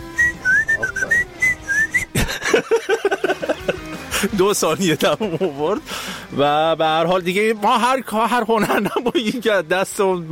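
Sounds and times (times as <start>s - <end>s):
person whistling a wavering melody off-mic: 0.0s - 2.2s
voice-like sounds: 0.7s - 1.4s
laughter: 1.9s - 5.9s, 8.4s - 9.7s
speech: 4.2s - 10.3s.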